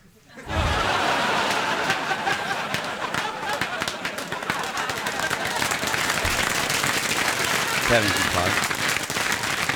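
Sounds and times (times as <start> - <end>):
scattered chuckles: 0.2 - 1.6
audience applause after a joke: 0.4 - 9.7
speech: 7.9 - 8.7.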